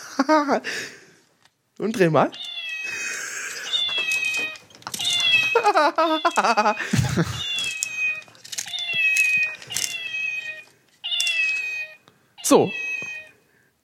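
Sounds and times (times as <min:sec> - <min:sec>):
speech: 0:00.2 - 0:01.0, 0:01.8 - 0:02.5, 0:05.6 - 0:07.5, 0:12.5 - 0:12.8
high electronic cat meows of a cat-shaped pencil sharpener: 0:02.4 - 0:03.0, 0:03.6 - 0:06.8, 0:07.4 - 0:13.4
laughter: 0:05.5 - 0:07.5.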